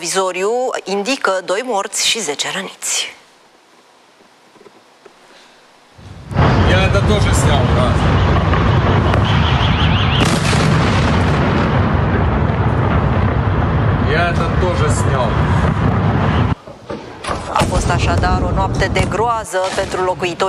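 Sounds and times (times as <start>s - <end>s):
speech: 0.0s - 3.2s, 14.1s - 15.7s, 17.8s - 20.4s
explosions during missile attack on city at night: 6.0s - 16.6s, 17.5s - 19.3s
crackling debris: 6.0s - 20.2s.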